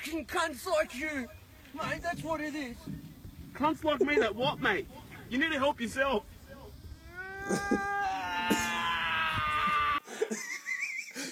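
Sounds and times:
speech: 0.1s - 6.3s, 7.5s - 8.7s
man howling in a played clip: 7.0s - 10.1s
laughter: 7.5s - 11.3s.

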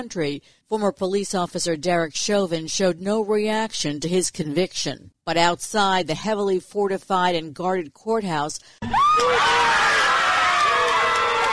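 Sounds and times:
speech: 0.0s - 10.0s
large outdoor crowd cheering: 8.8s - 11.5s
people whooping and shouting: 8.8s - 11.5s.

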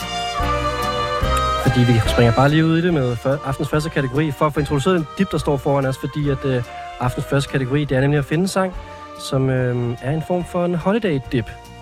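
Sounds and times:
short musical transition jingle: 0.0s - 8.7s
speech: 1.8s - 11.6s.

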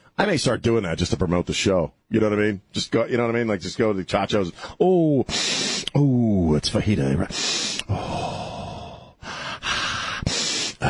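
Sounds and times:
speech: 0.2s - 8.4s
person sniffing loudly, mimicking sniffing food: 5.3s - 6.0s, 7.3s - 10.8s.

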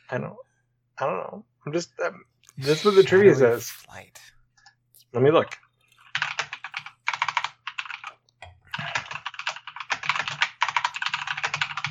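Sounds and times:
speech: 0.1s - 4.4s, 5.1s - 5.6s
typing on a computer keyboard: 6.0s - 11.9s.

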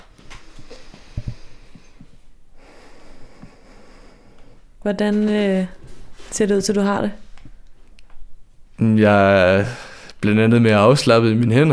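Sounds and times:
deep breath in and out: 0.3s - 4.8s, 9.6s - 10.2s
speech: 4.8s - 7.2s, 8.8s - 11.7s.

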